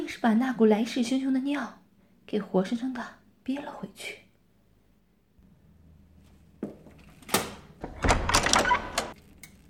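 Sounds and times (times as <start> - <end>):
speech: 0.1 - 4.2
metallic door latch clicking and rattling: 7.3 - 9.2
soft thunk of a door: 7.8 - 9.1.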